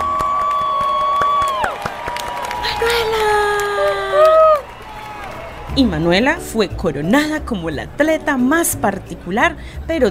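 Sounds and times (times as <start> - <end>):
crowd at a school race cheering and applauding: 0.0 - 6.4
speech: 5.8 - 10.0.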